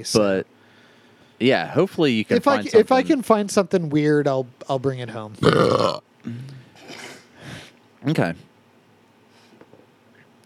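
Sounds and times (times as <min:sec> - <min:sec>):
speech: 0:00.0 - 0:00.6, 0:01.4 - 0:06.6, 0:08.0 - 0:08.5
person burping into the microphone: 0:05.4 - 0:07.1.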